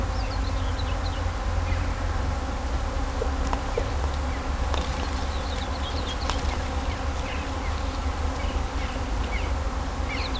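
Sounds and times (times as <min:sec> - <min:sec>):
birds singing in rural countryside: 0:00.1 - 0:10.3
bees buzzing among grapevines at Kallstadt Germany: 0:02.0 - 0:10.3
road traffic noise: 0:02.0 - 0:10.3.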